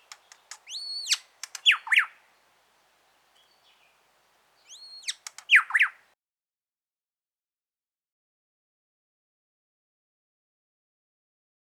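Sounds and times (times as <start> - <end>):
Grey shrike-thrush song: 0.0 - 6.1.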